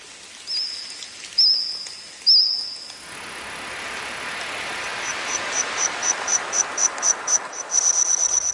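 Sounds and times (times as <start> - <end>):
soft hissing background: 0.0 - 8.5
insects chirping and trilling in a forest: 0.5 - 3.0, 5.0 - 8.5.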